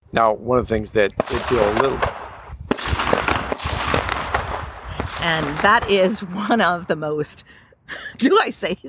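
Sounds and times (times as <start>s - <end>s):
speech: 0.1s - 2.1s, 5.2s - 8.8s
fireworks popping and crackling: 1.0s - 7.4s.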